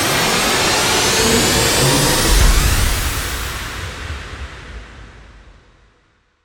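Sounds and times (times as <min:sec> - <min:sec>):
transition sound effect: 0:00.1 - 0:04.2.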